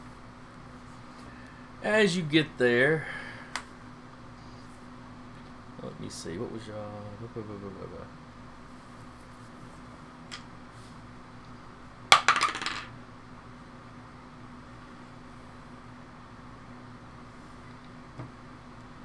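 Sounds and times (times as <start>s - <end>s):
hum: 0.0s - 19.0s
speech: 1.8s - 3.2s, 6.1s - 8.2s
dice rolling on hard surface: 12.1s - 13.0s.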